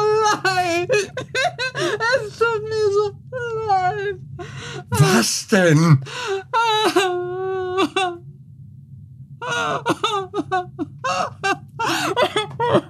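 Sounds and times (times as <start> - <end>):
person wailing and crying: 0.0 - 4.2, 4.8 - 5.4, 6.2 - 8.2, 9.4 - 12.8
speech: 5.2 - 6.4.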